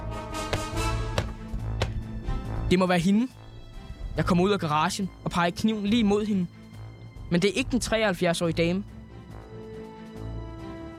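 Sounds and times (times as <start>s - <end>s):
low droning musical backdrop: 0.0s - 10.9s
footsteps of pointed shoes: 0.4s - 2.1s
speech: 2.7s - 3.4s, 4.2s - 6.6s, 7.3s - 8.9s.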